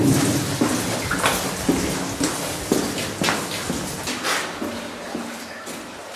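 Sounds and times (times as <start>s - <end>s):
water dripping from tunnel ceiling and splashing: 0.0s - 4.1s.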